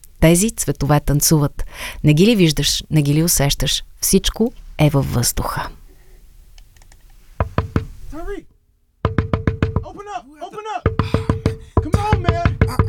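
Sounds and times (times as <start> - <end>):
speech: 0.2 - 5.8
loud rapid knocking on a door: 7.4 - 8.0, 9.0 - 10.0, 10.9 - 12.8.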